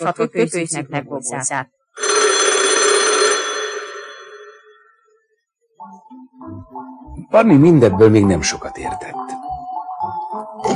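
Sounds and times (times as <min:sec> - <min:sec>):
speech: 0:00.0 - 0:01.8, 0:07.3 - 0:09.4
red dial telephone bell ringing: 0:02.0 - 0:04.9.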